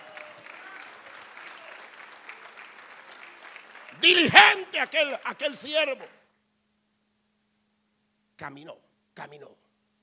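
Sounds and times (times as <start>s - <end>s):
audience at a church service clapping: 0.0s - 6.0s
speech: 4.0s - 6.2s, 8.4s - 9.6s.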